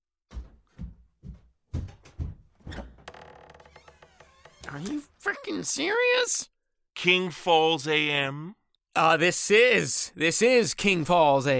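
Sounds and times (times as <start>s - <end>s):
heavy footsteps walking away: 0.3s - 3.3s
door closing: 1.8s - 5.2s
door latch rattling and creaking: 2.6s - 5.1s
speech: 4.7s - 11.5s.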